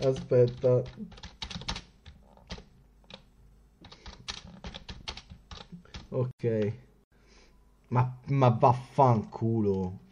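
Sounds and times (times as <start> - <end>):
speech: 0.0 - 1.3, 6.1 - 6.9, 7.9 - 10.0
typing on a wireless computer keyboard with weak batteries: 0.0 - 6.2.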